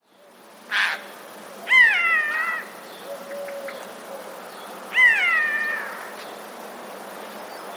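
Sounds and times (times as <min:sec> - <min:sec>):
Eurasian jay giving drawn-out cat-like mewing calls: 0:00.7 - 0:03.8, 0:04.9 - 0:06.2.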